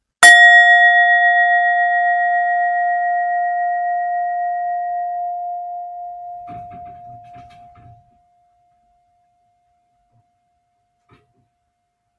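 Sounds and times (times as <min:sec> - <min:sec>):
singing bowl struck on a trivet ringing: 0:00.2 - 0:08.8.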